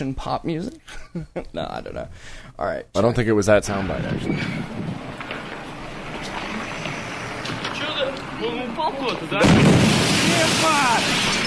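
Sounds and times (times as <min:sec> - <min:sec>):
speech: 0:00.0 - 0:05.0, 0:08.4 - 0:11.4
booming blast from an object streaking through the air: 0:03.7 - 0:05.3, 0:09.4 - 0:11.4.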